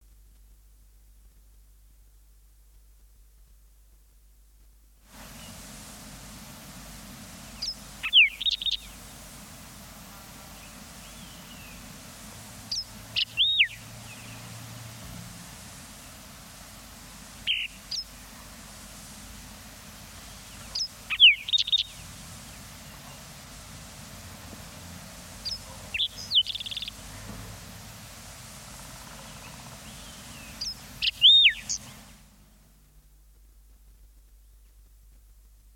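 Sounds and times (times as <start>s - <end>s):
songbirds singing: 7.3s - 15.1s, 15.9s - 18.7s, 19.8s - 32.7s
green-tailed towhee singing: 7.5s - 9.0s, 10.6s - 11.8s, 12.7s - 14.4s, 17.4s - 18.2s, 20.3s - 22.0s, 25.4s - 27.0s, 29.0s - 32.2s.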